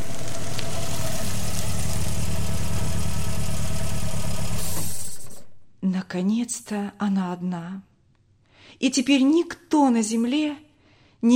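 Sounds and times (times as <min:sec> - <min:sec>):
car engine idling on a dark country dirt road at night: 0:00.0 - 0:05.6
speech: 0:06.1 - 0:07.9, 0:08.8 - 0:11.3.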